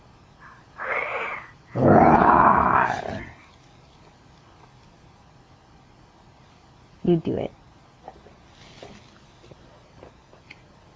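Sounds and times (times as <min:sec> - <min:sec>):
person imitating a lion roar: 0:00.8 - 0:03.4
speech: 0:07.1 - 0:07.6.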